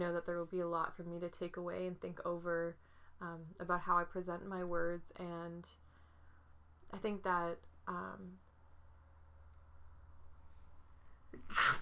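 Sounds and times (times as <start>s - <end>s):
speech: 0.0s - 5.8s, 6.9s - 8.4s
person sneezing: 11.4s - 11.8s.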